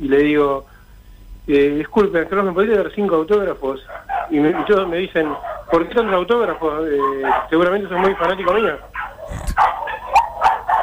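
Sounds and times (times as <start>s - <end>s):
speech: 0.0s - 0.7s, 1.5s - 9.7s
several dogs barking and yipping: 3.8s - 10.8s.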